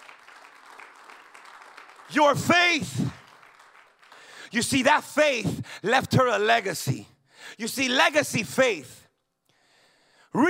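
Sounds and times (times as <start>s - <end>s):
crowd clapping: 0.0s - 5.4s
speech: 2.1s - 3.2s, 4.5s - 9.0s.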